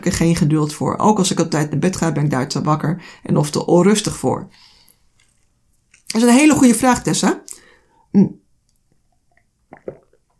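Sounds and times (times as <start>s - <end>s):
speech: 0.0s - 4.7s, 6.1s - 8.4s
person sipping water: 4.8s - 6.1s, 8.7s - 10.3s
person swallowing water: 8.1s - 8.5s, 9.3s - 10.3s.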